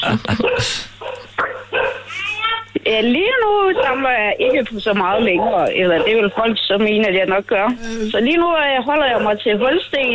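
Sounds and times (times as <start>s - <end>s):
speech: 0.1s - 0.9s, 2.9s - 10.1s
dogs barking: 0.3s - 2.1s, 3.6s - 6.6s, 9.0s - 10.1s.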